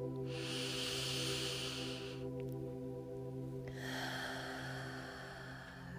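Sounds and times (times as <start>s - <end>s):
deep breathing in and out: 0.0s - 2.4s, 3.6s - 5.9s
sustained musical drone: 0.0s - 5.9s.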